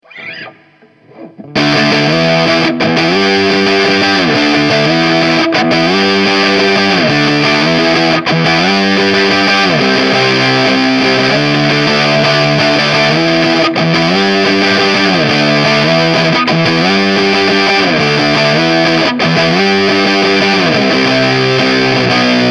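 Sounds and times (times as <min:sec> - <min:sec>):
hard fuzz guitar rhythm with guitar effect: 0:00.0 - 0:22.4.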